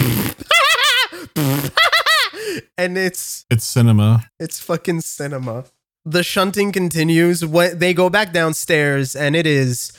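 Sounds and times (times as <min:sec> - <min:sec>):
voice imitating blowing raspberries: 0:00.0 - 0:01.8
speech: 0:02.8 - 0:09.9.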